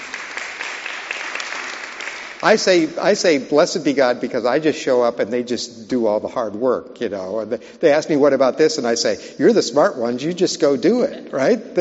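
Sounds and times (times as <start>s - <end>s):
audience clapping: 0.0s - 2.9s
speech: 2.4s - 11.7s.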